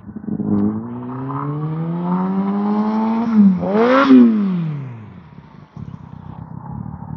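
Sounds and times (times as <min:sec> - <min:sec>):
sport motorcycle engine revving past: 0:00.2 - 0:05.4.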